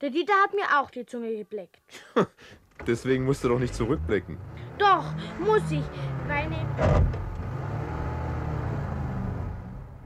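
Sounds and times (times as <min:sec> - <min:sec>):
speech: 0:00.0 - 0:07.3
car engine roaring: 0:02.7 - 0:10.0.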